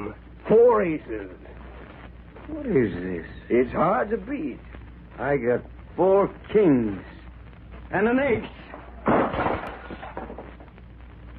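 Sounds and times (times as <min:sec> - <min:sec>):
speech: 0:00.1 - 0:01.4, 0:02.5 - 0:07.2, 0:07.9 - 0:08.6
rattling debris settling: 0:08.6 - 0:10.8
lamp crashing to the floor with breaking glass: 0:09.0 - 0:10.7.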